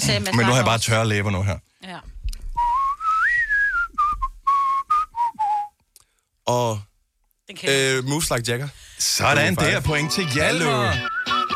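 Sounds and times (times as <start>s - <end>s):
speech: 0.0s - 2.1s, 6.5s - 6.9s, 7.5s - 11.2s
person whistling a catchy pop tune: 2.5s - 5.8s, 10.6s - 11.5s
brief breaths: 6.0s - 6.4s, 8.7s - 9.2s.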